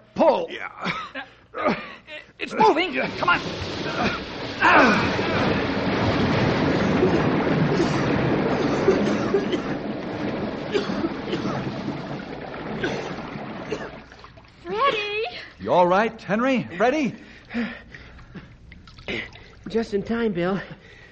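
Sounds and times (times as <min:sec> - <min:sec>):
speech: 0:00.2 - 0:05.5, 0:08.9 - 0:10.0, 0:15.6 - 0:17.8, 0:19.7 - 0:20.8
water rushing out through an opened door: 0:02.5 - 0:15.3.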